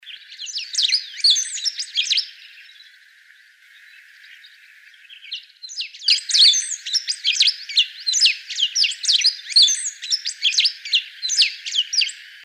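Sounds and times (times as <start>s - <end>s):
Pampa Finch Embernagra platensis calling: 0.0s - 2.8s, 3.7s - 12.4s.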